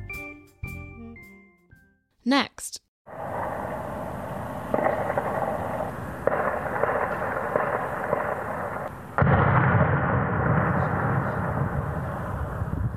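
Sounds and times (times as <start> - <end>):
speech: 2.3 - 2.9
hand grenade explosions in an attack in northern Stockholm: 3.1 - 12.9.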